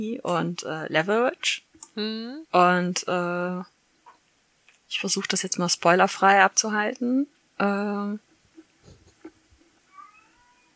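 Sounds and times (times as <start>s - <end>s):
speech: 0.0s - 3.8s, 4.9s - 8.3s
soft chirping sounds: 8.8s - 10.7s
cat meowing: 9.9s - 10.7s.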